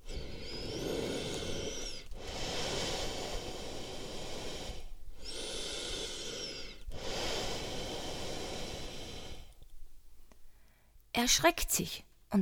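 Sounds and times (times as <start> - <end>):
person lying on his back snoring loudly with wheezy whistling inhales: 0.0 - 9.6
speech: 11.2 - 12.4.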